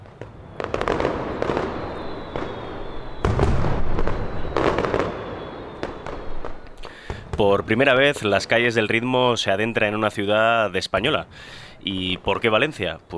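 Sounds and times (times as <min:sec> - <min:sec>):
mascletà firecracker barrage in Valencia Spain: 0:00.0 - 0:08.8
speech: 0:07.4 - 0:13.1.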